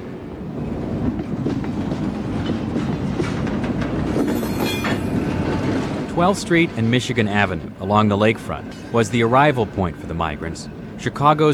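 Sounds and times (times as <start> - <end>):
train rumbling along rails with clickety-clack: 0.0 - 11.5
faint metallic squealing from train wheels: 4.1 - 11.5
speech: 6.2 - 11.5.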